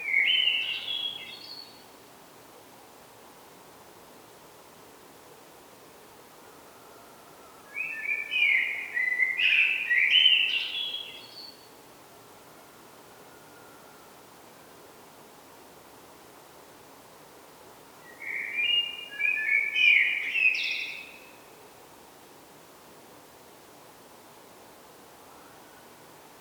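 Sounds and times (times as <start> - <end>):
Turdus merula common blackbird song: 0.0 - 1.8, 7.7 - 11.7, 18.0 - 21.4.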